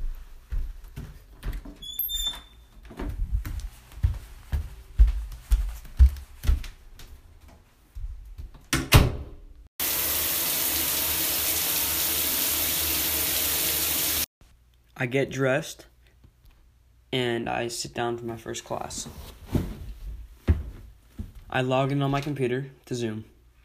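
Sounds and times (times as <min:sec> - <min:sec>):
footsteps: 0:00.0 - 0:01.8, 0:02.6 - 0:08.6
door sound: 0:08.7 - 0:09.4
shower spray of running water hissing: 0:09.8 - 0:14.3
speech: 0:15.0 - 0:15.9, 0:17.1 - 0:19.6, 0:21.5 - 0:23.3.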